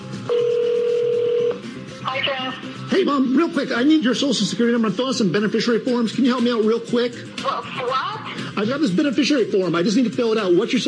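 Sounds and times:
steady electronic phone tone placing a call: 0.3s - 1.7s
speech: 2.9s - 10.8s.

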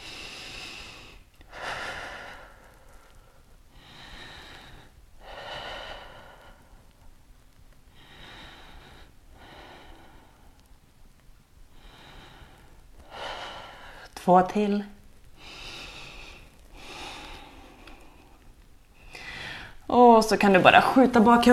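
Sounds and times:
long deep breaths exhaling through mouth: 0.0s - 7.0s, 7.9s - 10.7s, 11.7s - 14.2s, 15.4s - 19.9s
speech: 14.3s - 15.0s, 20.2s - 21.5s.

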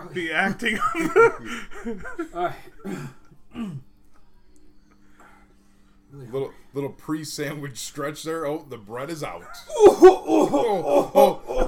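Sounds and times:
speech: 0.1s - 3.9s, 6.1s - 11.6s
laughter: 0.5s - 2.8s, 9.6s - 11.6s
short coughs into an arm: 2.7s - 3.9s.

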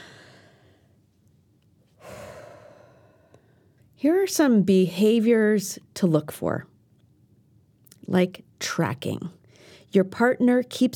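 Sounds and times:
deep breath in and out: 0.0s - 1.0s, 2.0s - 3.8s
speech: 4.0s - 6.7s, 8.1s - 10.9s.

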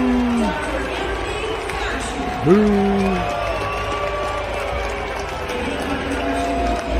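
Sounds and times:
large baseball stadium crowd roaring: 0.0s - 6.9s.

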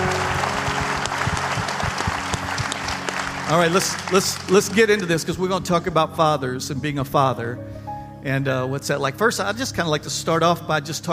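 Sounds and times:
room full of people clapping: 0.0s - 5.4s
speech: 3.5s - 11.1s.

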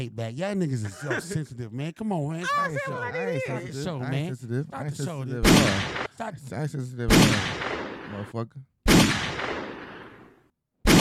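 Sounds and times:
speech: 0.0s - 7.6s, 8.2s - 9.2s
laughter: 0.7s - 1.6s, 2.4s - 6.6s
gunshots: 5.4s - 6.1s, 7.1s - 8.2s, 8.9s - 10.2s.

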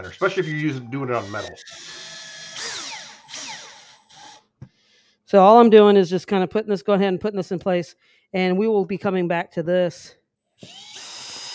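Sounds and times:
speech: 0.0s - 2.1s, 5.3s - 10.9s
power drill driving in screws: 1.2s - 4.5s, 10.6s - 11.5s.

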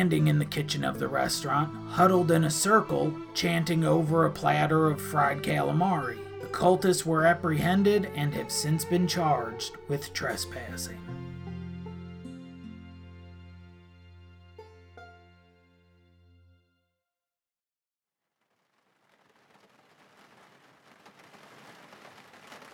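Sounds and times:
speech: 0.0s - 11.2s
sustained musical tone: 0.0s - 16.5s
heavy rain pouring outside: 18.6s - 22.7s.

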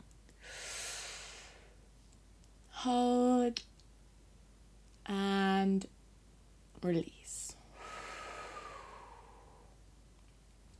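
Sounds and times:
deep breath during a guided relaxation exercise: 0.4s - 1.8s, 7.6s - 9.8s
speech: 2.8s - 3.7s, 5.1s - 6.0s, 6.8s - 7.4s.

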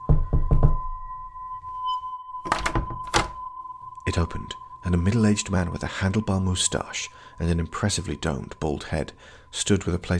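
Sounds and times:
knocking on a door: 0.0s - 0.9s
faint steady humming tone: 0.0s - 10.1s
speech: 4.1s - 10.1s.

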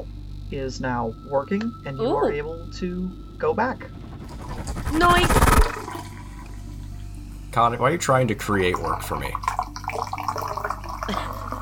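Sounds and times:
speech: 0.5s - 4.0s, 4.9s - 6.2s, 7.6s - 9.6s
fizzy drink slowly poured from a can: 5.6s - 6.5s, 8.7s - 11.6s.

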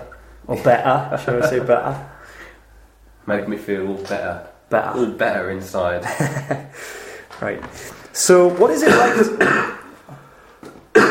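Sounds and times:
speech: 0.5s - 2.2s, 3.2s - 9.8s
laughter: 1.2s - 2.0s, 6.0s - 6.9s
throaty exhale: 6.8s - 7.3s
person coughing: 8.8s - 9.9s, 10.9s - 11.1s.

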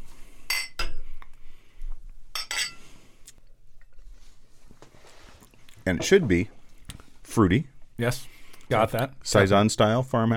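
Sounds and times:
glasses clinking in a toast: 0.5s - 1.0s, 2.4s - 2.8s
speech: 5.9s - 6.6s, 7.4s - 10.3s.

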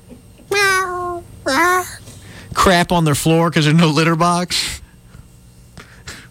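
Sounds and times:
human voice imitating cat meows: 0.5s - 1.9s
speech: 2.6s - 4.8s.

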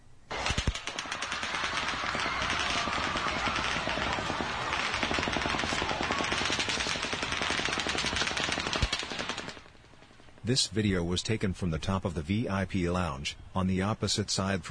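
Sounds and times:
automatic gunfire at the start of a shooting: 0.3s - 9.7s
speech: 10.5s - 14.6s.

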